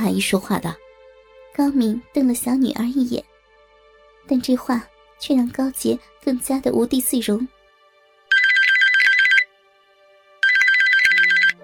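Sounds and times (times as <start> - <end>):
speech: 0.0 - 0.8, 1.6 - 3.3, 4.3 - 7.6
mobile phone ringtone: 8.3 - 9.5, 10.4 - 11.6.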